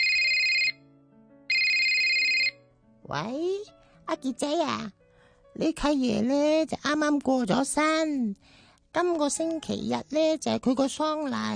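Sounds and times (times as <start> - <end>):
telephone ringtone for an incoming call: 0.0 - 0.8, 1.5 - 2.6
speech: 3.1 - 5.0, 5.6 - 11.5.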